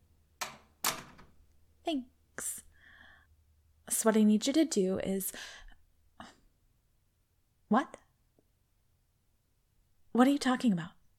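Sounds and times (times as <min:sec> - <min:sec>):
door swinging shut with sharp clunks: 0:00.4 - 0:01.4
speech: 0:01.9 - 0:02.6, 0:03.9 - 0:05.6, 0:07.7 - 0:08.0, 0:10.2 - 0:11.0.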